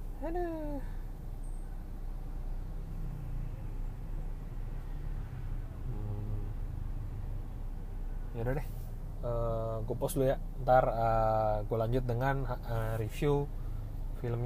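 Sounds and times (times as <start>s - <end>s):
car idling in a traffic jam in Mampang: 0.0s - 14.4s
speech: 0.2s - 1.0s, 8.4s - 13.6s, 14.2s - 14.4s.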